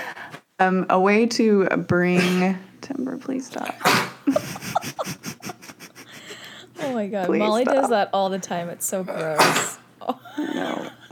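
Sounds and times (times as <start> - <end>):
speech: 0.6 - 5.3, 6.9 - 11.0
dog coughing and hacking: 2.1 - 2.5, 3.6 - 5.5, 9.1 - 9.9
laughter: 4.2 - 8.3, 10.0 - 11.0.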